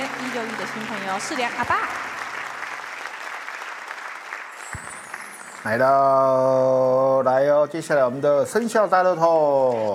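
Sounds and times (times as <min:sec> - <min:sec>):
audience applause: 0:00.0 - 0:06.0
speech: 0:00.4 - 0:02.2, 0:05.6 - 0:09.9.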